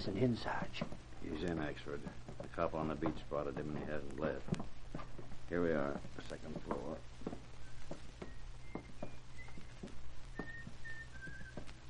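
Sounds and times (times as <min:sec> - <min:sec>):
speech: 0:00.0 - 0:04.8, 0:05.5 - 0:07.1
low steady hum: 0:00.0 - 0:11.8
scattered soft taps: 0:00.4 - 0:11.8
man whistling a tune behind a closed door of a second-floor room: 0:07.6 - 0:11.8.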